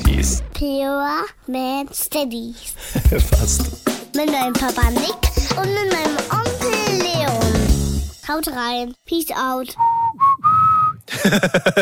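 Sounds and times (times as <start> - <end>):
speech: 0.2 - 7.5, 8.3 - 10.0, 11.2 - 11.8
laughter: 2.8 - 3.7, 11.1 - 11.8
person whistling: 9.8 - 11.2.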